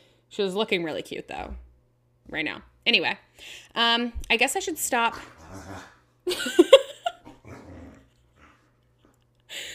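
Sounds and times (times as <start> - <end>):
speech: 0.3 - 1.7, 2.3 - 6.8
female dog growling: 5.0 - 6.2, 7.1 - 9.2
laughter: 6.3 - 7.2.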